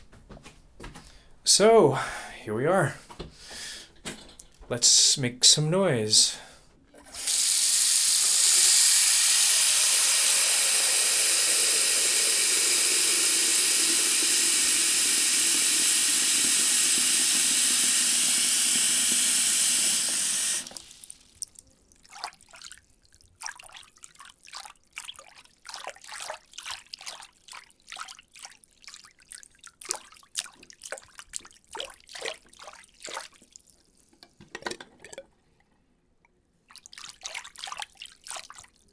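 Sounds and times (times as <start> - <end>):
speech: 1.5 - 3.0, 4.7 - 6.5
water running into a bathroom sink: 7.0 - 22.8, 23.4 - 33.8
faint water drips in a bathroom sink: 7.0 - 34.4, 36.7 - 38.9.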